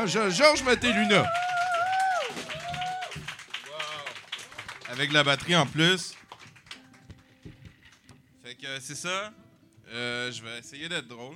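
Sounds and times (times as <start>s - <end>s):
speech: 0.0s - 1.5s, 5.0s - 6.2s, 8.7s - 11.3s
audience clapping in a dense steady patter: 0.0s - 8.1s.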